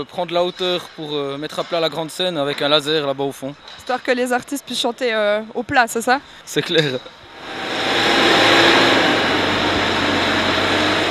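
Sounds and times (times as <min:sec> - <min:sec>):
speech: 0:00.0 - 0:07.6
heavy tractor engine revving while maneuvering: 0:07.3 - 0:11.0.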